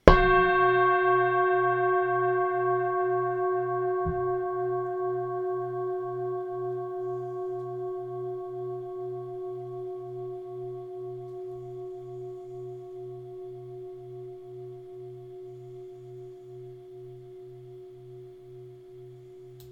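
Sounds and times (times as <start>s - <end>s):
275 cm singing bowl in G: 0.0s - 19.6s.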